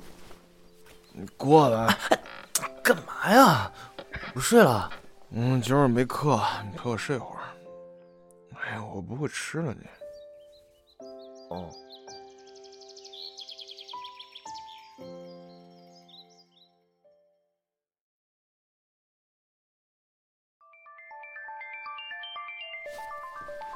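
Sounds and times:
speech: 1.2 - 2.2, 2.9 - 3.8, 4.4 - 7.4, 8.7 - 10.0, 11.5 - 11.8
mobile phone ringtone playing an electronic melody: 20.7 - 23.7.

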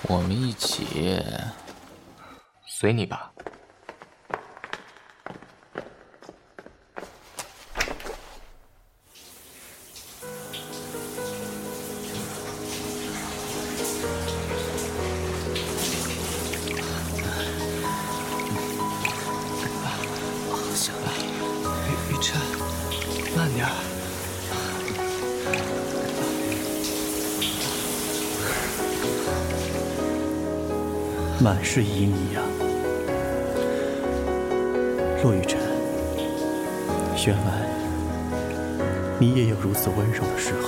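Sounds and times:
speech: 0.0 - 1.6, 2.8 - 3.5, 31.4 - 32.5, 35.2 - 35.6, 37.2 - 37.7, 39.2 - 40.6
shower water running: 9.0 - 40.6.

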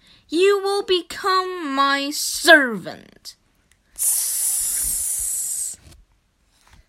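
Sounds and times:
speech: 0.3 - 1.4, 2.0 - 3.4
aerosol spray hissing from a can sprayed at someone: 4.0 - 5.8.

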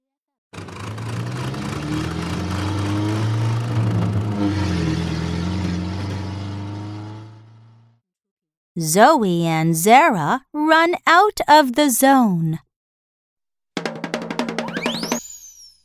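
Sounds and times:
car engine humming and revving: 0.6 - 8.0
speech: 8.8 - 12.7.

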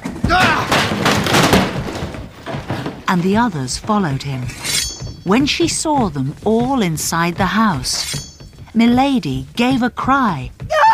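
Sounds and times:
door being forcefully broken down: 0.0 - 3.5
person shouting: 0.2 - 0.7, 10.7 - 10.9
speech: 3.1 - 8.2, 8.8 - 10.6.

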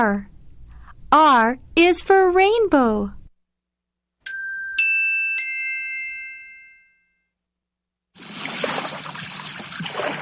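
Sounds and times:
speech: 0.0 - 0.3, 1.1 - 3.2
bright chime dings: 4.2 - 7.3.

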